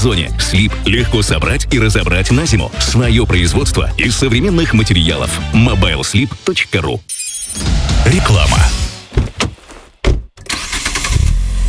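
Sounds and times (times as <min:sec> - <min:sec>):
speech: 0:00.0 - 0:09.3
238-horsepower Geely Monjaro engine cranking and starting: 0:09.4 - 0:11.6.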